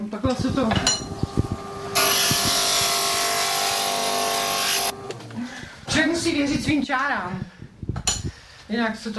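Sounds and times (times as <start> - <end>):
speech: 0.1 - 1.1, 6.4 - 7.5, 8.7 - 9.1
grinder grinding a piece of glass: 0.7 - 5.2.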